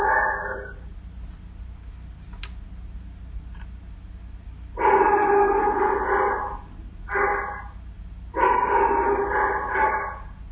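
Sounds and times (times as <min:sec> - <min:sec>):
dog barking: 0:00.0 - 0:00.8, 0:04.8 - 0:07.8, 0:08.4 - 0:10.4
steady low hum: 0:00.0 - 0:10.5.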